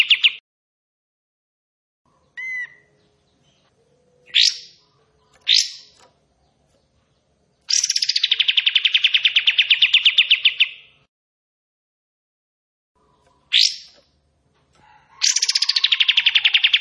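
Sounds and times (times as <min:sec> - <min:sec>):
bulbul song with rattling trills and a short rising note: 0:02.1 - 0:06.4, 0:07.6 - 0:11.1, 0:13.0 - 0:14.3, 0:15.1 - 0:16.7.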